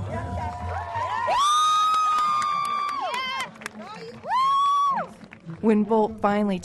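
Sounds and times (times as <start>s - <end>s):
crowd cheering and screaming around a sprinter: 0.2s - 3.5s, 4.2s - 5.2s
speech: 5.6s - 6.6s.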